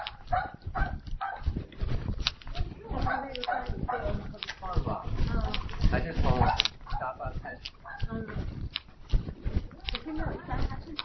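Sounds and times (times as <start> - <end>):
dog barking in short bursts: 0.0 - 1.6, 3.0 - 4.2, 6.3 - 7.2, 7.8 - 8.1
people talking: 2.5 - 8.5, 9.7 - 11.0.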